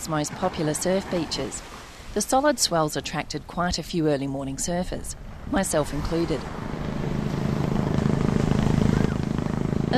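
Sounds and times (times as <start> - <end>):
speech: 0.0 - 6.7
shark patrol helicopter hovering above a surf beach on a summer morning: 5.3 - 9.9.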